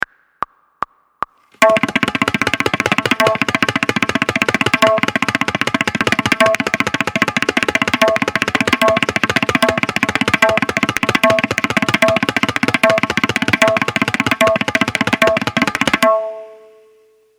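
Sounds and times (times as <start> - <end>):
drum long roll practice: 1.6 - 16.6.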